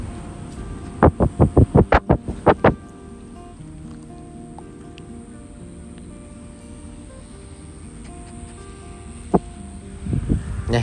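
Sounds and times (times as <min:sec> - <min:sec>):
faint outdoor background: 0:00.0 - 0:10.8
dog panting in the heat: 0:07.9 - 0:09.5.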